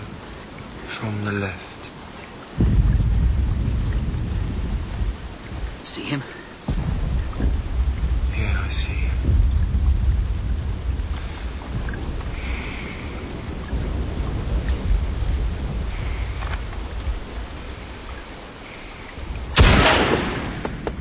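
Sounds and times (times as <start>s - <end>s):
low windy ambient rumble in a video game: 0.0s - 20.9s
speech: 1.0s - 1.7s, 6.0s - 6.4s
rifle shot in a video game: 19.6s - 20.9s.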